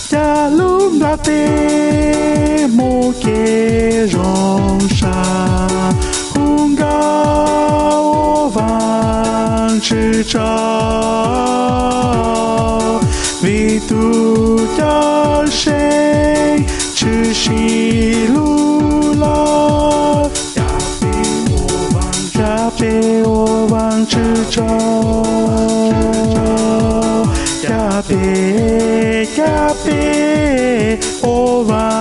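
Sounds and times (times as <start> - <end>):
tenor voice: 0.2 - 31.9.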